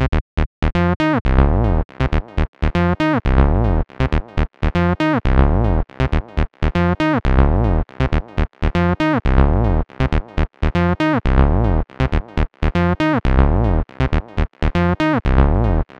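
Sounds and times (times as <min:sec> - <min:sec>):
classic acid music: 0:00.9 - 0:15.9.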